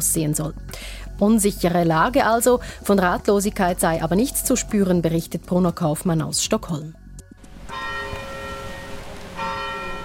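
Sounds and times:
speech: 0.0 - 7.0
church bells ringing: 7.6 - 10.0.

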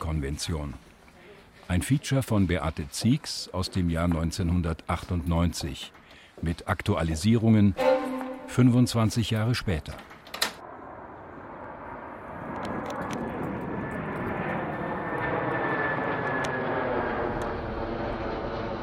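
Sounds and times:
speech: 0.1 - 0.9, 1.7 - 7.9, 8.5 - 10.1
airplane flying overhead: 10.6 - 18.8.

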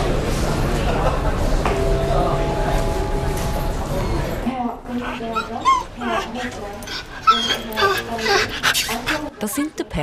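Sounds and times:
babble of voices: 0.4 - 9.8
brief tonal chime: 1.7 - 4.4
two dogs whimpering and yipping on a flight: 5.0 - 9.6.

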